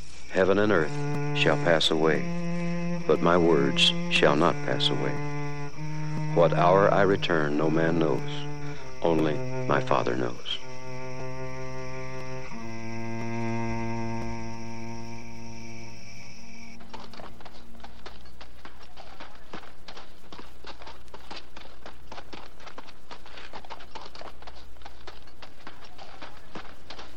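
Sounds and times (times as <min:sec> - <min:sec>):
hooves of a donkey carrying a rider clip-clopping: 0:00.0 - 0:27.1
speech: 0:00.4 - 0:02.4, 0:03.1 - 0:05.3, 0:06.4 - 0:10.6
sustained musical tone: 0:00.4 - 0:17.6.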